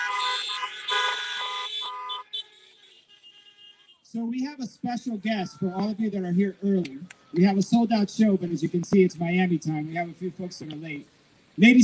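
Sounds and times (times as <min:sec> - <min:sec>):
car horns honking at a drive-in at a fair: 0:00.0 - 0:08.3
speech: 0:04.1 - 0:11.8.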